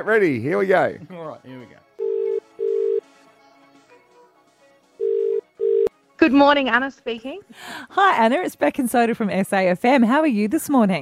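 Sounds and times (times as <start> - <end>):
speech: 0.0 - 1.8, 6.2 - 11.0
faint music: 0.0 - 11.0
telephone line ringing back as a call is placed: 2.0 - 3.0, 5.0 - 5.9.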